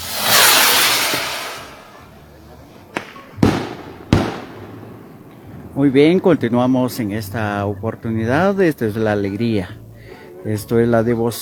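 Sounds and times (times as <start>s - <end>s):
fireworks bombs booming at a religious festival procession: 0.0s - 2.1s, 2.7s - 8.6s
fireworks crackle and rumble at a religious festival procession: 0.0s - 9.9s
speech: 5.8s - 9.8s, 10.4s - 11.4s.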